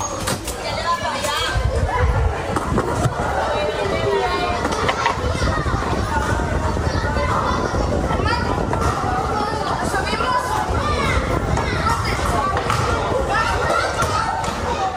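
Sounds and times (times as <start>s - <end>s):
children shouting and laughing at play outdoors at dusk in La Manga del Mar Menor: 0.0s - 14.9s.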